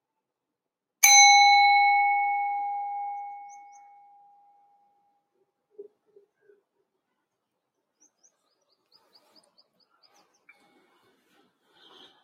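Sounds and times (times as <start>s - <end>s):
mindfulness bell struck during a meditation: 1.0s - 4.4s.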